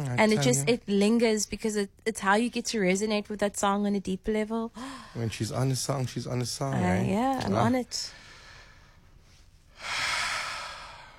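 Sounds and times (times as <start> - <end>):
speech: 0.2 - 8.2
deep breath drawn in: 4.8 - 5.2, 8.1 - 9.1, 9.7 - 11.1.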